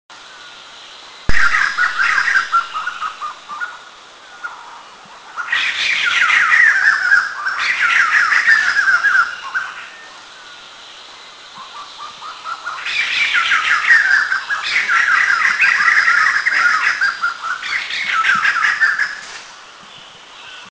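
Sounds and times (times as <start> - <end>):
White-crested Laughingthrush calls in Eaglenest India: 1.3 - 10.4, 11.5 - 19.4.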